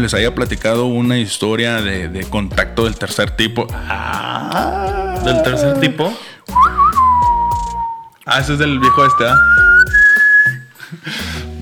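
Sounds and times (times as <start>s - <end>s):
speech: 0.0s - 6.3s, 8.2s - 9.6s
whistled five-note melody in long held tones: 6.5s - 11.6s.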